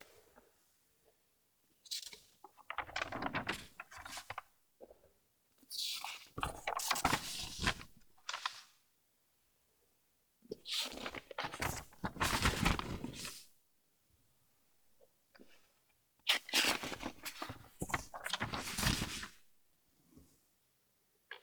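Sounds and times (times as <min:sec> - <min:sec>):
page turning slowly: 0:02.6 - 0:04.4, 0:06.4 - 0:08.8, 0:11.1 - 0:13.3, 0:16.7 - 0:19.4.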